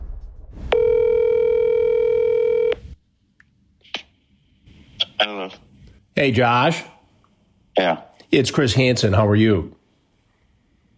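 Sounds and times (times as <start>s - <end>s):
steady electronic phone ring tone: 0.7s - 2.8s
speech: 6.2s - 6.9s, 7.8s - 9.8s.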